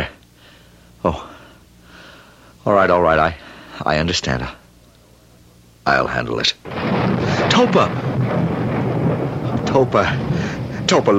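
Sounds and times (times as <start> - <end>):
speech: 1.0 - 1.3, 2.6 - 4.6, 5.8 - 6.8, 7.5 - 8.4, 9.7 - 10.3, 10.9 - 11.1
thunder rolling during a storm: 6.6 - 11.1.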